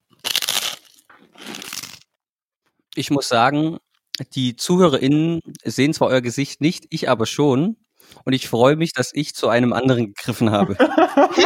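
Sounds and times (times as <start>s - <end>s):
crunching and chewing chocolate: 0.0s - 2.1s
biting into a chocolate bar made without sweet whey: 0.1s - 2.1s
speech: 3.0s - 11.4s
laughter: 10.4s - 11.4s.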